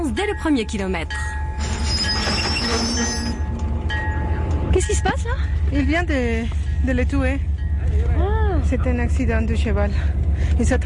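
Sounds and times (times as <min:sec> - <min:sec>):
passenger train wheels rumbling on track from Chihuahua to the Pacific coast: 0:00.0 - 0:10.8
speech: 0:00.2 - 0:01.4, 0:02.7 - 0:03.4, 0:04.7 - 0:10.8
thin high squealing tones of passenger train: 0:01.6 - 0:03.5.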